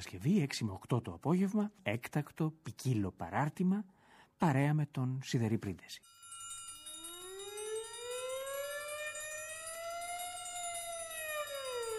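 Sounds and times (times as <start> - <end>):
speech: 0.0 - 6.1
fire engine siren wailing: 7.1 - 11.9.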